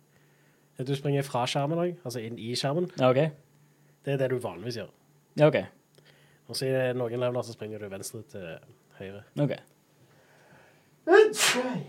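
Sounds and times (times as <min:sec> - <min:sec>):
speech: 0:00.8 - 0:03.4, 0:04.0 - 0:05.8, 0:06.5 - 0:09.7, 0:11.1 - 0:11.8
person sneezing: 0:11.1 - 0:11.8.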